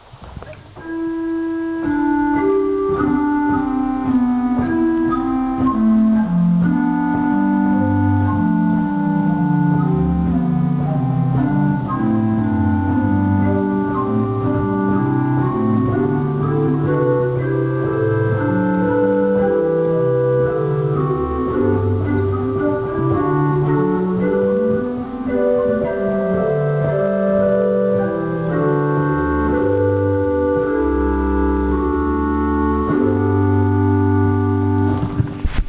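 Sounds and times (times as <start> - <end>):
pipe organ Rohrflöte 8 stop: 0.4 - 35.4.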